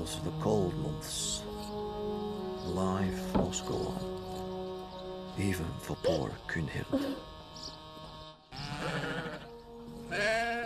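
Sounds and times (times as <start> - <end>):
speech: 0.1 - 1.8, 2.6 - 4.3, 5.4 - 7.3
several sheep bleating: 8.5 - 10.6.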